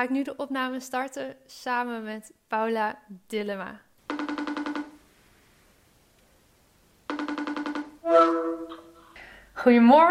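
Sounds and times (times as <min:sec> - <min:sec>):
speech: 0:00.0 - 0:03.9, 0:09.6 - 0:10.0
telephone ringback tone while a call is placed: 0:07.1 - 0:09.0
brief tonal sound: 0:08.0 - 0:09.1.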